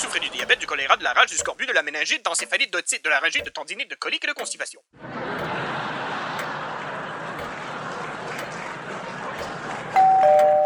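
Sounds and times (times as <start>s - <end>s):
laughter: 0.0s - 1.1s, 5.0s - 10.1s
speech: 0.2s - 5.6s
doorbell chime ringing at a front door: 10.0s - 10.6s.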